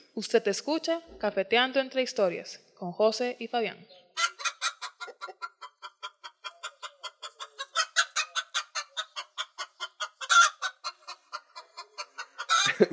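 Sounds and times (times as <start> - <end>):
speech: 0.2 - 3.9
hens clucking: 4.2 - 12.9.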